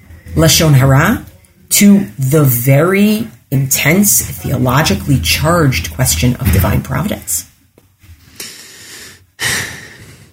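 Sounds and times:
speech: 0.3 - 7.5
heavy noisy inhalations: 8.2 - 10.3.

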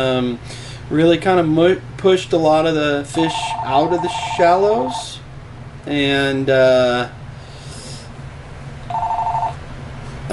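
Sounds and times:
speech: 0.0 - 5.2, 5.8 - 7.2
telephone ringing with a warbling electronic ring: 3.1 - 5.1, 8.9 - 9.6.

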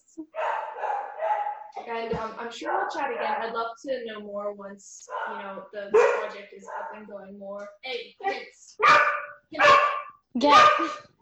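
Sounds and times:
dog giving loud drawn-out barks: 0.3 - 1.9, 2.6 - 3.6, 5.0 - 7.2, 8.2 - 11.1
speech: 1.8 - 11.1.

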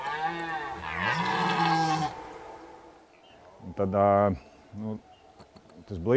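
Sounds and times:
red deer stag bellowing in rut: 0.0 - 2.5
speech: 3.8 - 5.1, 5.9 - 6.1.

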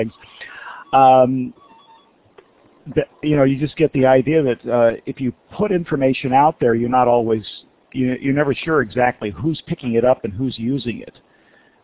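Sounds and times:
speech: 0.0 - 0.3, 0.9 - 1.6, 2.9 - 11.2
telephone ringing with electronic tones: 0.8 - 2.2.

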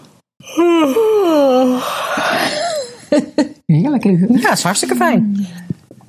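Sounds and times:
person yawning to widen the throat: 0.4 - 2.8
speech: 4.0 - 5.6.

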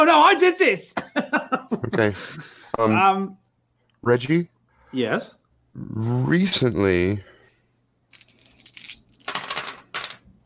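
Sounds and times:
speech: 0.0 - 3.4, 4.0 - 7.3
laughter: 1.0 - 2.7
dice rattling across a hard table: 8.1 - 10.3.

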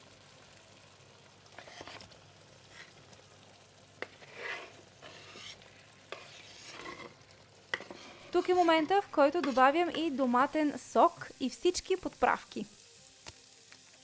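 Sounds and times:
chopped tomato chunks sizzling in a frying pan: 0.0 - 14.0
utensil scraping and clinking while stirring a pan: 1.5 - 3.0, 4.0 - 10.3
speech: 8.4 - 12.8.

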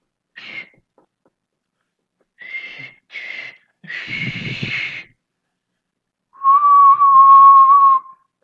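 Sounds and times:
person imitating a lifeguard's long whistle blast with their mouth: 6.4 - 8.2.

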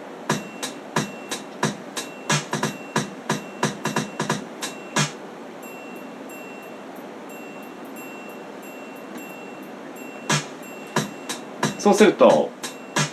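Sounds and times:
programmed triangle ringing bright and high: 0.3 - 1.4, 2.0 - 13.1
hip-hop style drum beat: 0.3 - 5.2, 10.3 - 13.1
speech: 11.8 - 12.6.

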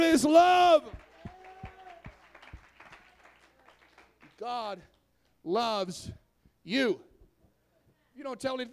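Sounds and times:
speech: 0.2 - 1.0, 4.4 - 7.1, 8.2 - 8.7
church audience clapping hands in praise during a sermon: 0.6 - 5.1.

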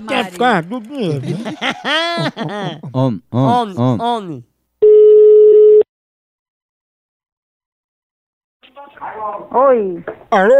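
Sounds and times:
laughter: 0.0 - 4.4
speech: 0.0 - 4.5, 9.0 - 10.5
telephone ringback tone on an outgoing call: 4.8 - 5.8.

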